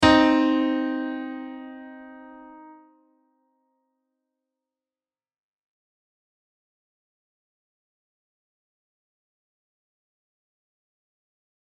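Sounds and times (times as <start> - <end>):
C minor third harmonic: 0.0 - 2.8.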